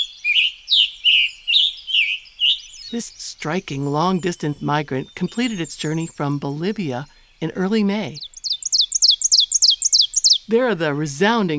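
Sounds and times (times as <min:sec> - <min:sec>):
scarlet tanager singing: 0:00.0 - 0:11.5
speech: 0:02.9 - 0:08.3, 0:10.5 - 0:11.5.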